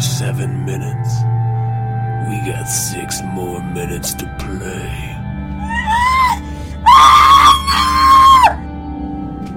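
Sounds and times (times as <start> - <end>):
speech: 0.2 - 1.4, 2.3 - 5.2
person screaming in high-pitched wails: 5.6 - 8.6.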